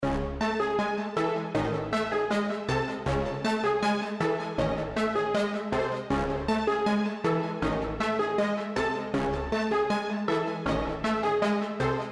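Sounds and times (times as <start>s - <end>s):
brass music in C minor at 158 BPM: 0.0s - 12.1s.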